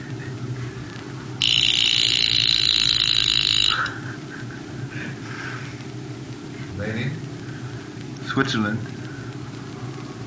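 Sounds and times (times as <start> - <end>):
low room hum: 0.0 - 10.2
alarm watch shrill electronic buzz: 1.4 - 4.2
speech: 8.4 - 8.9.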